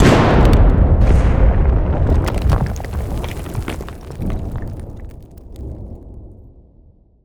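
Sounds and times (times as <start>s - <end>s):
rock debris falling from an explosion: 0.0s - 6.1s
explosion: 0.0s - 6.2s.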